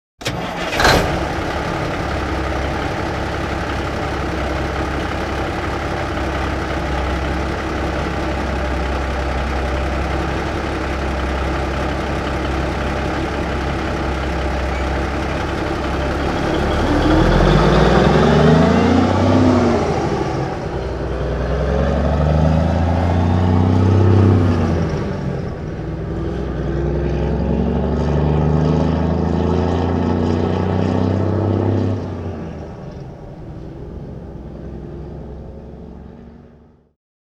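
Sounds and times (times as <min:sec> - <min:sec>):
1954 big rig truck engine starting: 0:00.2 - 0:36.9.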